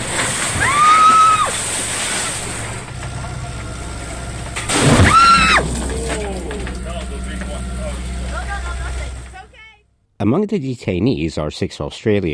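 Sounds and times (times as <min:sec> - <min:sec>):
water cannon spraying onto a vessel: 0:00.0 - 0:09.4
vessel engine rumble: 0:00.0 - 0:09.8
speech: 0:10.2 - 0:12.3.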